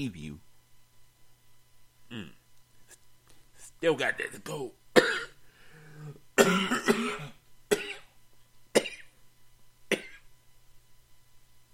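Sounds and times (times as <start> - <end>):
speech: 0.0 - 0.4, 2.1 - 2.4, 3.8 - 5.2, 6.0 - 7.3
person clearing throat: 5.0 - 5.4, 6.0 - 8.1, 8.8 - 9.2, 9.9 - 10.3
person coughing: 5.0 - 5.4, 6.0 - 8.1, 8.8 - 9.2, 9.9 - 10.3.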